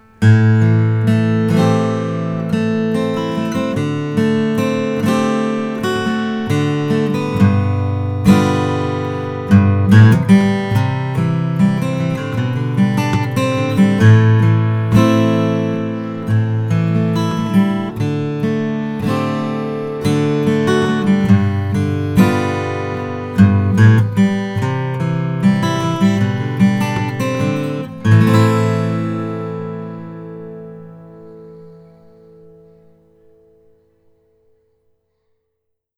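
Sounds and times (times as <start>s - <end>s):
koa twelve-fret acoustic guitar: 0.0s - 35.9s.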